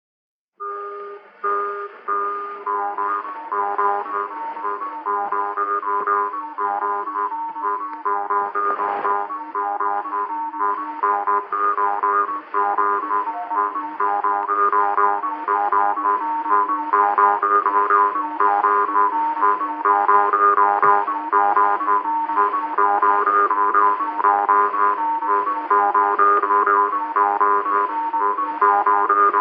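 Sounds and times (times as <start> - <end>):
jaw harp playing folk dance music: 0.6 - 29.3.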